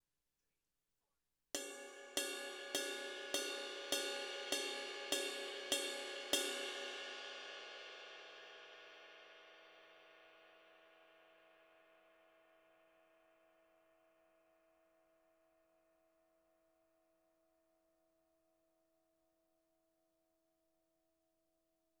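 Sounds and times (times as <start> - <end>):
20-inch crash ride cymbal bell: 1.6 - 9.6.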